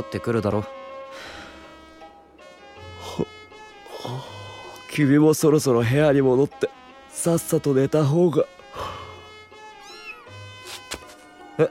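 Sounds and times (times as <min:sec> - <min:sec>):
speech: 0:00.0 - 0:01.4, 0:05.0 - 0:08.6
cat meowing: 0:09.8 - 0:10.4.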